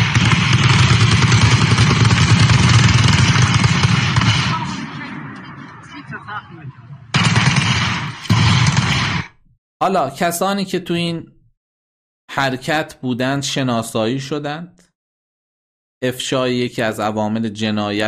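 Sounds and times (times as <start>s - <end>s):
sustained rapid gunfire: 0.0s - 5.8s, 7.1s - 9.4s
speech: 9.8s - 11.3s, 12.3s - 14.8s, 16.0s - 18.0s.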